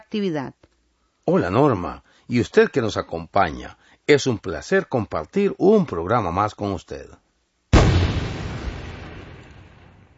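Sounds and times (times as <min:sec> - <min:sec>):
speech: 0:00.1 - 0:00.7, 0:01.3 - 0:07.2
loud explosion with deep low-end rumble: 0:07.7 - 0:10.1.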